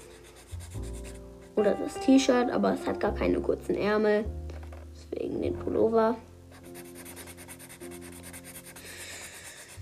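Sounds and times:
felt-tip pen coloring on paper: 0.0 - 1.2, 6.6 - 9.8
speech: 1.6 - 4.4, 5.2 - 6.3.

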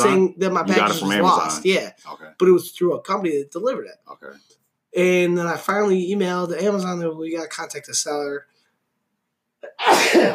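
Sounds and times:
speech: 0.0 - 8.5, 9.8 - 10.3
person sneezing: 9.6 - 10.3.

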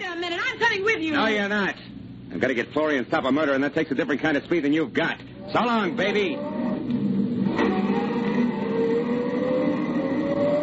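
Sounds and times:
speech: 0.7 - 7.0
car engine roaring at high revs while accelerating: 5.3 - 10.6.

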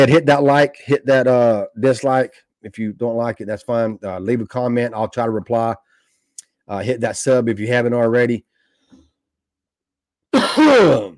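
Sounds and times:
speech: 0.0 - 5.8, 6.7 - 8.5, 10.3 - 11.1
cough into a microphone: 10.3 - 11.1.

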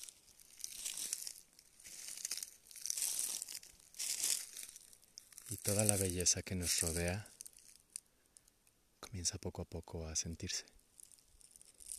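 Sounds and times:
dry brownish-grey fallen leaves crunching and crinkling: 0.0 - 8.0, 10.9 - 11.9
speech: 5.5 - 7.3, 9.1 - 10.8.

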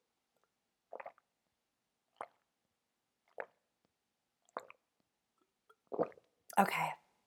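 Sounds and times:
person drinking water: 0.9 - 1.2, 2.1 - 2.4, 3.2 - 3.6, 4.4 - 6.3
speech: 6.0 - 7.0.

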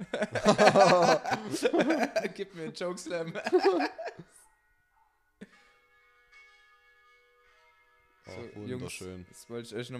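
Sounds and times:
burst of laughter: 0.0 - 2.4, 3.4 - 4.2
speech: 0.2 - 4.2, 8.3 - 9.9.

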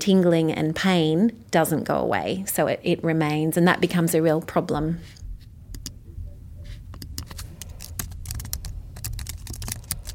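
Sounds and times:
speech: 0.0 - 5.2
low hum: 0.0 - 10.1
fingers typing on a computer keyboard: 7.0 - 10.1.

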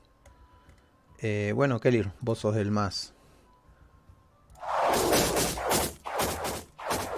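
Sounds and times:
speech: 1.2 - 3.2
arrows whooshing past: 4.6 - 7.1.

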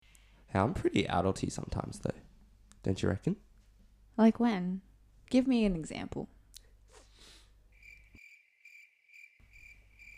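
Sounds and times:
speech: 0.5 - 2.2, 2.8 - 3.5, 4.2 - 6.4
crickets chirping: 7.7 - 10.1.

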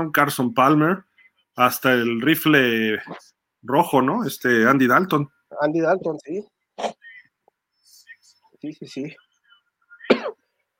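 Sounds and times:
speech: 0.0 - 6.9, 8.6 - 9.2
single short harsh cough: 6.8 - 7.3, 10.0 - 10.5.

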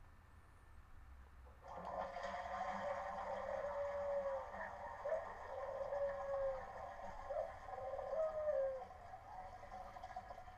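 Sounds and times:
toilet flushing: 1.6 - 7.8, 8.9 - 10.5
dove cooing: 3.0 - 10.0.

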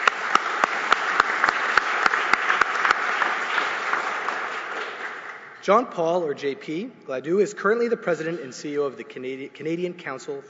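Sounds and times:
audience applauding: 0.0 - 5.6
sharp distinct claps: 0.0 - 5.7
speech: 5.6 - 10.4.

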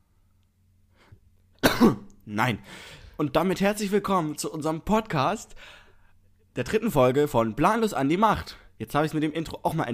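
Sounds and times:
person coughing: 1.6 - 2.1
speech: 1.8 - 5.8, 6.6 - 9.9.

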